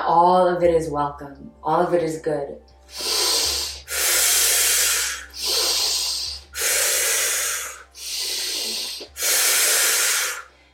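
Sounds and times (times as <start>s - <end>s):
speech: 0.1s - 3.1s
rapid active breathwork breathing in and out: 2.9s - 10.7s.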